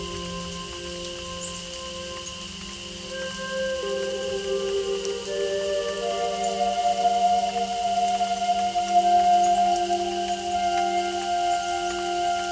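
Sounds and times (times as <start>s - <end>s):
Native American flute playing long held tones: 0.0s - 12.5s
steady rain-like patter: 0.0s - 12.5s.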